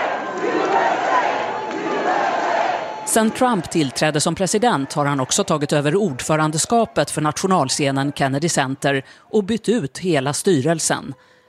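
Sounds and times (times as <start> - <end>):
large crowd in an auditorium booing and cheering: 0.0 - 9.0
speech: 3.1 - 11.4.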